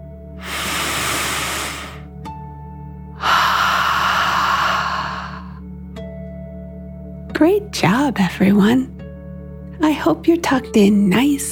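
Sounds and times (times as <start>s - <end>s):
slow deep relaxation breath in and out: 0.4s - 2.1s, 3.2s - 5.6s
speech: 7.4s - 9.0s, 9.8s - 11.4s.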